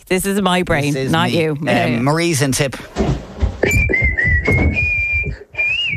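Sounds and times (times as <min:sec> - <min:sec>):
speech: 0:00.1 - 0:03.2
person whistling a tune: 0:03.6 - 0:05.9.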